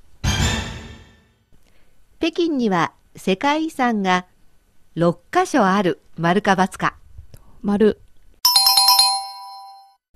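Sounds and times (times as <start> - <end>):
speech: 2.2 - 4.3, 5.0 - 7.0, 7.6 - 8.0
quiz-show correct-answer chime: 8.5 - 10.0.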